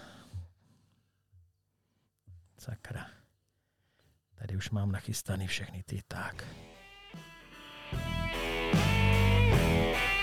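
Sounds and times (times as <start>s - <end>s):
speech: 2.6s - 3.2s, 4.4s - 7.3s
podcast intro music with sustained synth chords over heavy bass: 8.0s - 10.2s.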